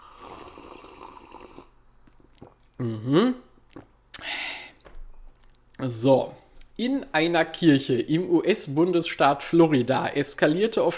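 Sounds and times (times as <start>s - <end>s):
brief voiced gulp: 0.0s - 4.3s
person taking a last sip of a drink: 0.0s - 5.6s
speech: 2.8s - 3.5s, 5.8s - 10.9s
short breathy exhale: 4.2s - 4.8s.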